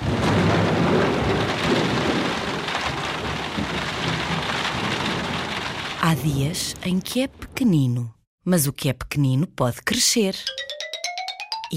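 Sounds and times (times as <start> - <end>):
heavy rain: 0.0 - 7.4
low rolling rumble of thunder: 0.0 - 7.7
speech: 6.2 - 10.8.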